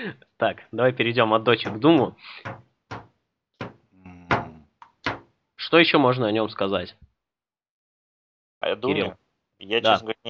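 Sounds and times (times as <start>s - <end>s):
speech: 0.0s - 2.6s, 5.7s - 7.0s, 8.6s - 10.2s
heavy bangs of a door being forced: 2.4s - 5.3s.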